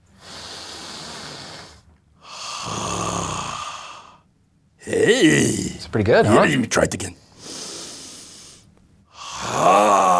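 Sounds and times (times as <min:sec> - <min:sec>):
deep belly breathing, inhale and exhale: 0:00.0 - 0:04.3, 0:07.3 - 0:10.1
speech: 0:02.6 - 0:02.9, 0:04.9 - 0:07.2.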